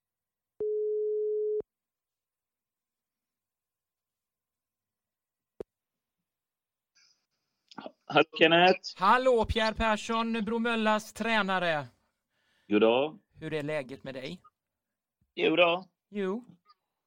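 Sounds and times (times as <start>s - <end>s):
telephone ringback tone while placing a call to a football coach in Sweden: 0.6s - 1.6s
speech: 7.8s - 12.0s, 12.7s - 14.5s, 15.4s - 16.6s.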